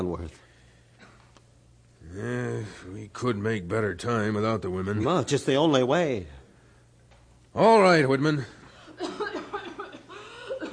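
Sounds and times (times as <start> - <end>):
speech: 0.0 - 0.5, 2.0 - 6.4, 7.6 - 9.2
woman coughing: 9.0 - 10.7.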